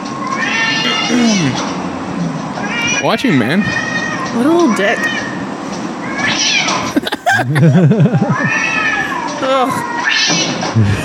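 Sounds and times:
steady noise: 0.0s - 11.0s
cat yowling angrily in a strained caterwaul: 0.2s - 1.8s, 2.6s - 7.0s, 8.2s - 10.7s
speech: 3.0s - 5.2s, 7.4s - 8.8s, 9.4s - 11.0s
laughter: 6.8s - 8.6s, 10.8s - 11.0s.

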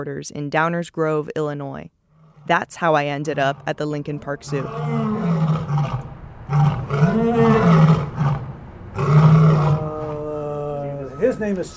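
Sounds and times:
speech: 0.0s - 6.0s, 11.2s - 11.7s
lion roaring at the Lincoln Park Zoo in Chicago: 2.1s - 11.4s.

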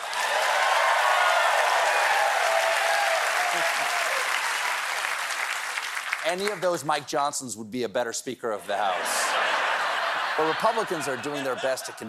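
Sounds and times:
studio audience applause: 0.0s - 6.7s
speech: 6.3s - 9.8s, 10.4s - 12.0s
laughter: 8.6s - 12.0s.

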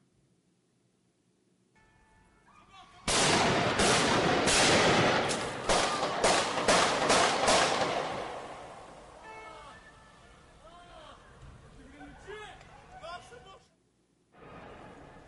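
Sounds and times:
gunshots fired at a policeman echoing: 3.1s - 9.2s.

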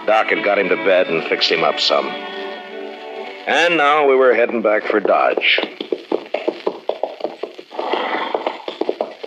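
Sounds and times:
speech: 0.1s - 2.4s, 3.4s - 5.9s
rumbling scuffing noise: 4.1s - 9.2s
horse hooves clip-clopping in a brisk rhythm: 4.3s - 9.2s.

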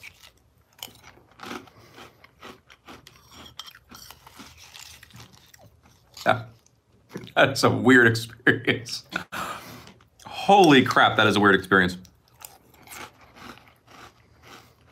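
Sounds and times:
chewing crunchy dry cinnamon toast cereal: 0.0s - 7.4s, 12.0s - 14.9s
speech: 6.3s - 6.5s, 7.4s - 9.1s, 10.5s - 12.1s.

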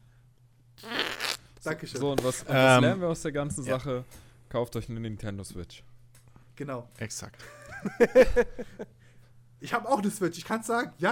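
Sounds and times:
buzzy mouth-made fart noise, a blown raspberry: 0.8s - 1.5s
speech: 1.6s - 5.9s, 6.6s - 9.0s, 9.6s - 11.1s
laughter: 7.4s - 8.9s.

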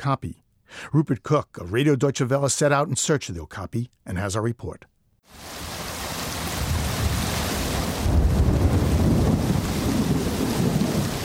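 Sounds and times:
speech: 0.0s - 5.6s
torrential rain pouring in tropical forest: 5.3s - 11.2s.

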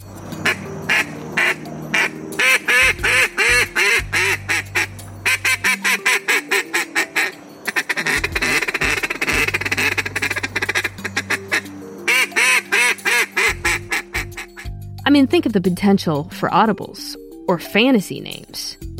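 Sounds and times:
man blowing duck call imitating duck quacks in competition style: 0.4s - 14.7s
speech: 15.6s - 18.6s.

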